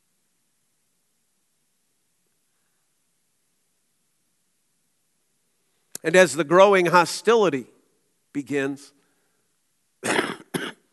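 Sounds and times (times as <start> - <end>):
speech: 6.0 - 7.7, 8.4 - 9.0
harsh coughs from a cold: 10.0 - 10.9.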